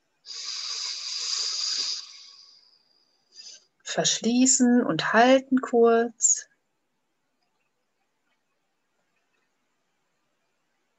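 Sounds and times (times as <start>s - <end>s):
inhaling through the left nostril during alternate-nostril breathing: 0.2s - 3.7s
sniff: 0.3s - 3.7s
speech: 4.0s - 6.5s.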